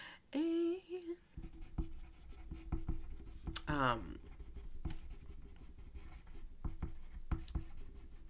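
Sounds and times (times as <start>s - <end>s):
speech: 0.3s - 0.5s, 3.7s - 4.2s
pen taps: 1.4s - 3.8s, 4.8s - 5.1s, 6.6s - 7.8s
pen scratching quickly across paper while scribbling notes by hand: 1.4s - 8.2s.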